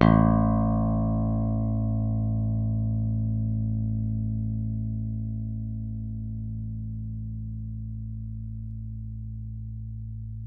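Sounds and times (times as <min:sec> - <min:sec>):
bass guitar played with a pick: 0:00.0 - 0:10.4.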